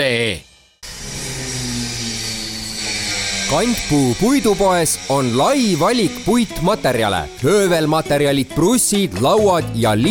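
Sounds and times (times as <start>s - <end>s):
speech: 0.0s - 0.5s, 3.5s - 10.0s
V8 American car engine revving: 0.8s - 8.1s.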